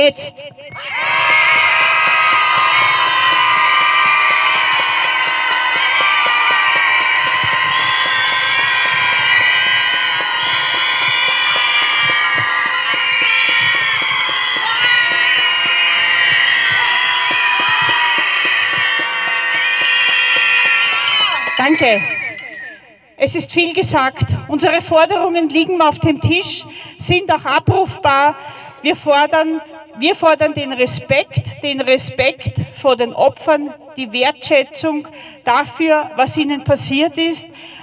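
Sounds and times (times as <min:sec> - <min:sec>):
speech: 0:00.0 - 0:00.9, 0:21.8 - 0:22.1, 0:23.2 - 0:37.8
large protest crowd screaming in anger: 0:00.7 - 0:23.0.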